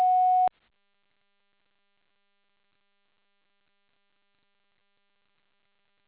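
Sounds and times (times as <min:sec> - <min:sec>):
answering machine beep: 0:00.0 - 0:00.5.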